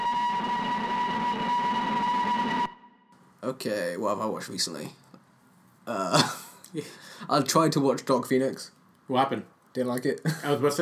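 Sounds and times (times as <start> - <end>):
train horn: 0.0 - 2.9
speech: 3.5 - 5.0, 5.9 - 10.8.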